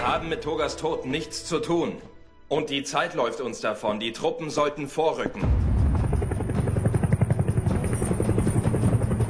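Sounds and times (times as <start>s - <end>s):
speech: 0.1s - 5.6s
helicopter rotor thumping: 5.2s - 9.2s.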